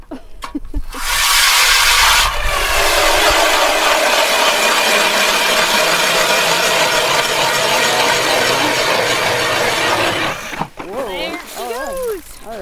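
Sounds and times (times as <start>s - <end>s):
motorized ice auger drilling through lake ice: 0.8s - 12.4s
voices: 3.0s - 12.5s.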